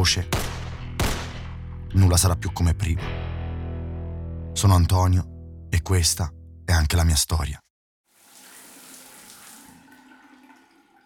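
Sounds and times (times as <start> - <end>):
speech: 0.0 - 0.4, 1.9 - 3.2, 4.6 - 7.6
shower water running: 8.1 - 11.0.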